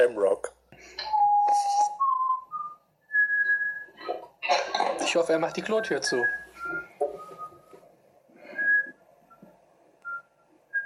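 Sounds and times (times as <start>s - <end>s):
speech: 0.0s - 1.1s, 5.1s - 6.8s
faint noise: 0.0s - 10.8s
person whistling a tune: 1.0s - 4.0s, 5.6s - 7.8s, 8.4s - 9.4s.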